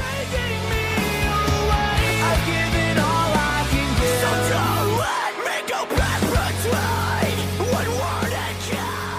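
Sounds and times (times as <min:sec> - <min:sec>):
loud dense rock song with hard screaming vocals, guitars and drums: 0:00.0 - 0:09.1.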